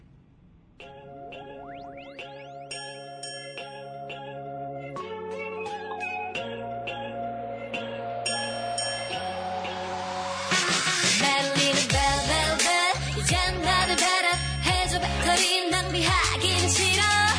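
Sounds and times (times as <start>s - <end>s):
upbeat K-pop girl group song with synths and beat: 3.6s - 17.3s.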